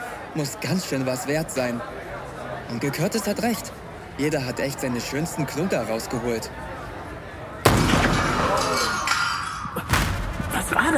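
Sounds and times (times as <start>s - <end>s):
speech: 0.4s - 2.1s, 2.7s - 6.7s
gunshot: 7.7s - 9.0s, 9.9s - 10.8s
glass display case shattering: 7.7s - 9.5s.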